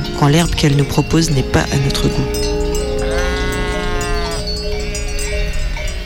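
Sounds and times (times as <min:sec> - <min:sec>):
speech: 0:00.2 - 0:02.5
steady farmyard noise: 0:01.4 - 0:06.0
sheep bleating: 0:02.2 - 0:05.3.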